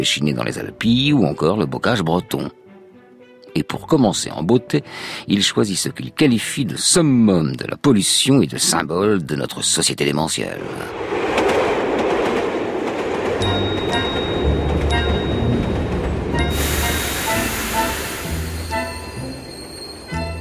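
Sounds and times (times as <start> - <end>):
speech: 0.0 - 2.6, 3.6 - 11.3
train arriving at a station, wheels rumbling and clattering on rails: 10.6 - 20.3
high thin squealing of train wheels: 16.5 - 20.3.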